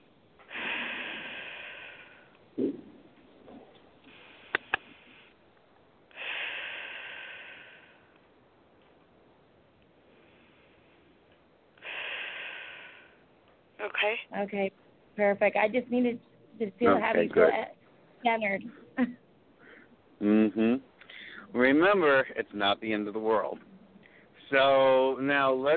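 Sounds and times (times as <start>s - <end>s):
slow deep breaths in through the nose and out through the mouth: 0.4s - 2.4s, 3.6s - 5.4s, 6.1s - 8.2s, 10.0s - 13.3s, 19.5s - 20.0s, 21.0s - 21.6s, 24.0s - 24.5s
speech: 13.8s - 19.2s, 21.7s - 23.7s, 24.5s - 25.7s.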